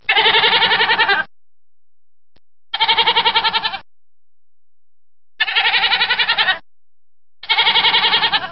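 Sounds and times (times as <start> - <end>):
goat bleating: 0.0 - 1.3, 2.8 - 3.8, 5.4 - 6.6, 7.4 - 8.5.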